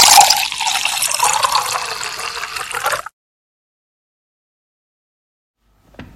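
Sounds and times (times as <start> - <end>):
water gushing from a tap: 0.0 - 3.1.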